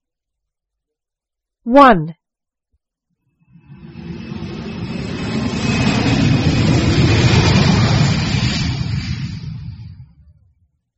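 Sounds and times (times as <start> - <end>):
speech: 1.6 - 2.2
aeroplane engine rumble: 3.4 - 10.9.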